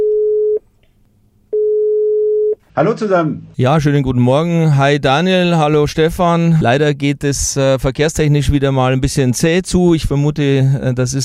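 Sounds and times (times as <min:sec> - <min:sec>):
telephone call tone beeping inside a car in a traffic jam: 0:00.0 - 0:00.6, 0:01.5 - 0:02.6
speech: 0:02.8 - 0:11.2.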